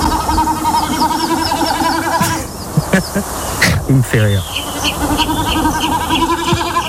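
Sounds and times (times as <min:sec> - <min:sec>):
reed-dwelling marsh bird's goat-like bleating display-flight sound: 0:00.0 - 0:06.8
laughter: 0:02.2 - 0:03.9
speech: 0:03.2 - 0:05.3.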